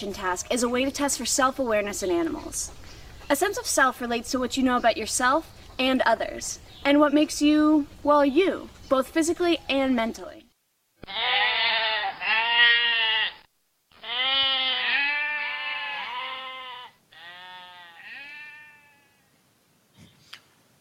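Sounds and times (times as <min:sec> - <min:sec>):
speech: 0:00.0 - 0:10.4
goats bleating: 0:11.0 - 0:19.3.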